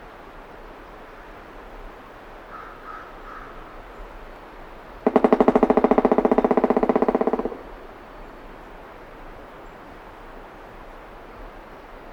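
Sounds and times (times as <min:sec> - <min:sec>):
Pileated Woodpecker Dryocopus pileatus: 0:05.1 - 0:07.7.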